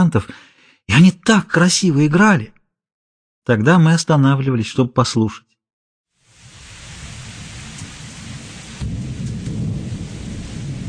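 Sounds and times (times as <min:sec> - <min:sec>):
speech: 0:00.0 - 0:02.6, 0:03.4 - 0:05.5
heavy rain pouring in a thunderstorm: 0:06.2 - 0:10.8
deep thunder rumbling low and close: 0:06.4 - 0:10.8.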